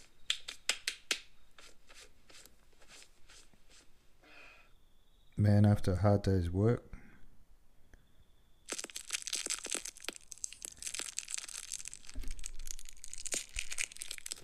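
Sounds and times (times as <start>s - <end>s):
speech: 5.4s - 6.9s
sweet wrapper crinkling and tearing: 8.7s - 14.4s.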